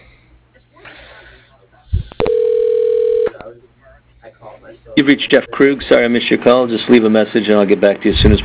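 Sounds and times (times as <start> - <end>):
steady mid-pitched telephone line tone: 2.2 - 3.4
speech: 4.6 - 8.4.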